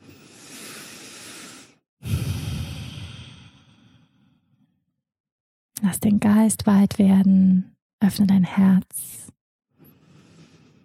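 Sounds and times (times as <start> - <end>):
deep breathing in and out during a guided meditation: 0.0 - 4.8, 9.8 - 10.8
speech: 5.9 - 9.2.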